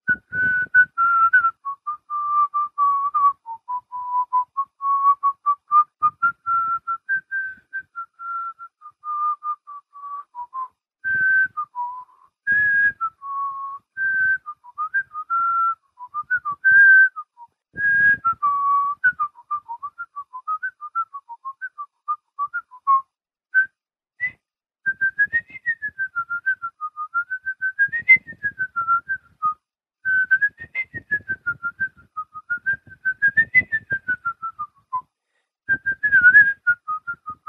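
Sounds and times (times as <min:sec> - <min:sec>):
person whistling a lively video game melody: 0:00.0 - 0:35.1, 0:35.7 - 0:37.4.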